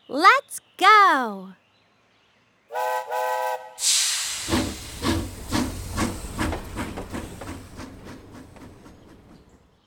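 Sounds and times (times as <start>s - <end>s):
speech: 0.1s - 1.6s
steam train whistle blasts: 2.7s - 4.5s
steam train chugging with rhythmic chuff: 2.7s - 9.8s
steam train releasing hissing steam: 3.8s - 8.4s.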